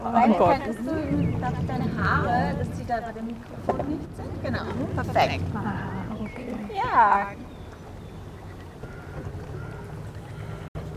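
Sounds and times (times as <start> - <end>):
speech: 0.0 - 7.4
broadband water noise aboard a river boat: 0.0 - 10.9
low engine rumble aboard a river boat: 0.0 - 10.9
wind noise aboard a river boat: 0.2 - 10.1.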